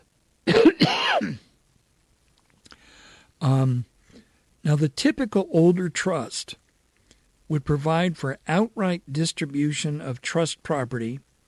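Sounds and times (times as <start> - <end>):
man clearing throat with a grunt: 0.5 - 1.5
man coughing: 0.5 - 1.5
speech: 3.4 - 3.9, 4.6 - 6.6, 7.5 - 11.3.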